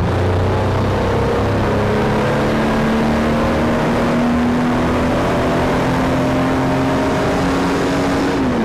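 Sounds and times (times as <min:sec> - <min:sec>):
vehicles: 0:00.0 - 0:08.6.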